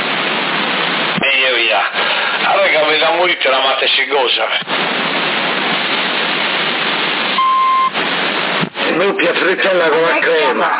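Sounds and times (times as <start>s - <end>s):
CB radio static hissing: 0.0s - 10.7s
speech: 2.9s - 5.2s, 9.0s - 10.7s
electronic censor beep: 7.4s - 8.0s.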